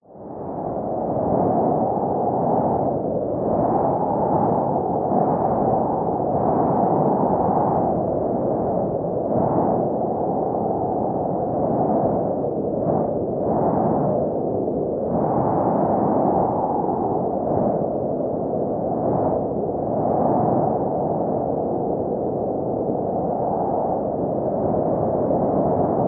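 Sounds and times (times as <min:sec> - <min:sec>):
strong stormy gale force wind howling: 0:00.0 - 0:26.0.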